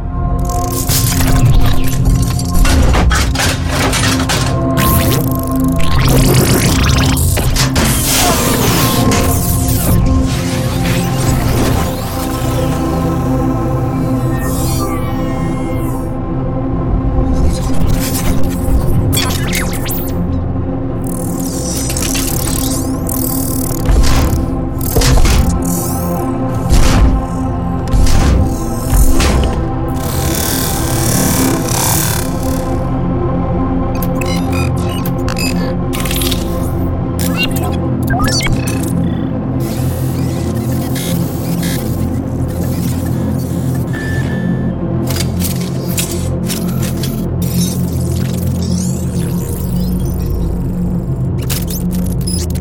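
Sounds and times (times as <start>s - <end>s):
robotic lifeforms sounds: 0.2s - 16.1s, 17.2s - 52.6s.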